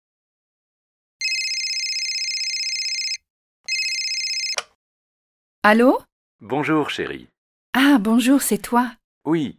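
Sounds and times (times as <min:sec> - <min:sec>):
telephone ringing with electronic trill: 0:01.2 - 0:04.7
speech: 0:05.6 - 0:09.5.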